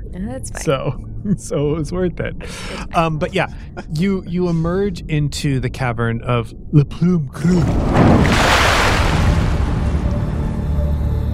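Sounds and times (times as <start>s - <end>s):
speech: 0.1s - 8.6s
water sloshing and splashing: 7.6s - 10.4s.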